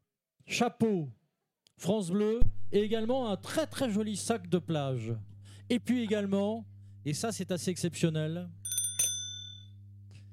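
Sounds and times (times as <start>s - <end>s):
speech: 0.5s - 1.2s, 1.8s - 8.7s
steady low hum: 2.4s - 10.3s
bicycle bell ringing: 8.6s - 9.7s.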